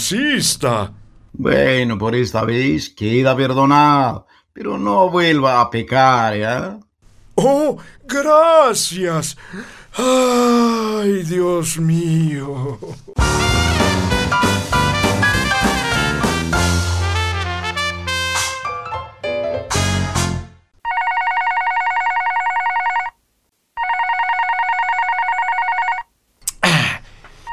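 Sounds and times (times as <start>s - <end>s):
speech: 0.0s - 6.8s, 7.4s - 14.7s
music: 13.2s - 20.7s
telephone ringing with buzzy electronic trills: 20.8s - 23.2s, 23.8s - 26.1s.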